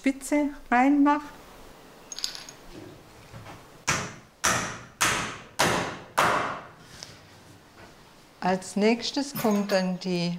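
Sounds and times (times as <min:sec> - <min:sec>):
speech: 0:00.0 - 0:01.4, 0:08.4 - 0:10.3
small clinks: 0:02.0 - 0:02.8, 0:09.3 - 0:10.1
sharp knocks as a clamp is fitted onto a wooden ladder: 0:03.9 - 0:06.7.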